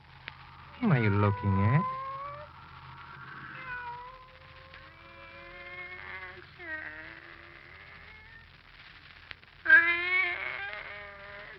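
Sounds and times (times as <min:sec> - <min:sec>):
faint low rumble: 0:00.0 - 0:11.5
pet cat meowing: 0:00.7 - 0:08.4, 0:09.6 - 0:11.5
speech: 0:00.8 - 0:02.0.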